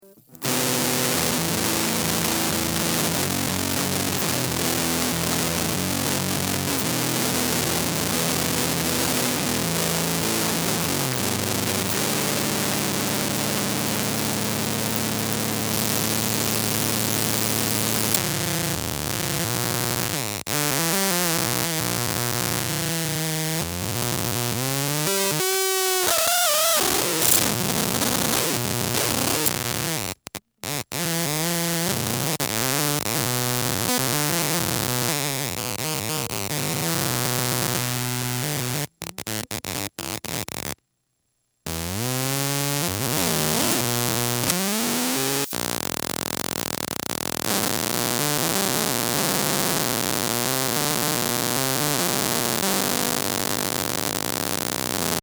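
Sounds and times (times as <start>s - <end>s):
noise: 0.0s - 55.2s.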